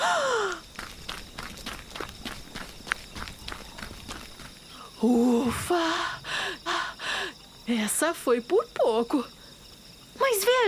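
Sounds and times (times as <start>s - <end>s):
quick running footsteps: 0.2s - 4.8s
short gasping falling breath: 4.7s - 7.4s
speech: 5.0s - 6.2s, 7.7s - 9.4s, 10.3s - 10.6s.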